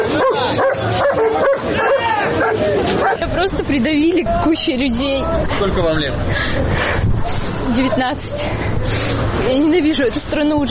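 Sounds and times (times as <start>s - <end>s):
police service dogs barking: 0.0s - 3.3s
murmur of crowd voices and commotion: 0.0s - 10.7s
speech: 3.4s - 10.7s.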